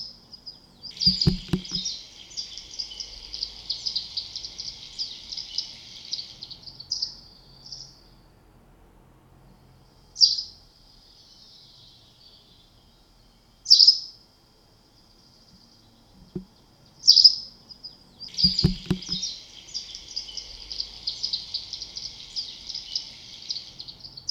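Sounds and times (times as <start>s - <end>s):
white wagtail calling: 0.9s - 7.9s, 16.2s - 24.2s.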